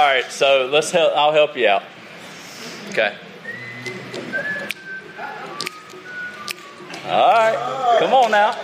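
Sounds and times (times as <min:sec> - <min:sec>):
speech: 0:00.1 - 0:02.0, 0:02.9 - 0:03.3, 0:07.1 - 0:08.6
person whistling a slow sustained melody: 0:03.4 - 0:07.1.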